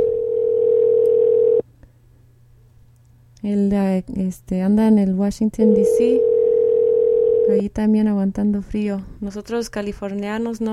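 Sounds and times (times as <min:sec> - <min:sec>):
telephone dial tone while placing a call: 0:00.0 - 0:01.6, 0:05.6 - 0:07.5
speech: 0:03.4 - 0:06.3, 0:07.5 - 0:10.7.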